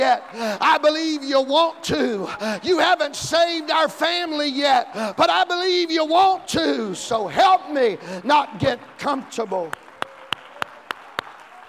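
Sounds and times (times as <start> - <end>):
speech: 0.0 - 9.8
crisp hand claps: 9.6 - 11.6.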